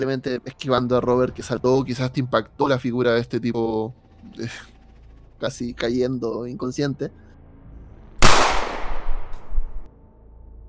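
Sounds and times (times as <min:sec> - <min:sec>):
speech: 0:00.0 - 0:04.7, 0:05.4 - 0:07.2
gunshot echoing: 0:08.2 - 0:09.9.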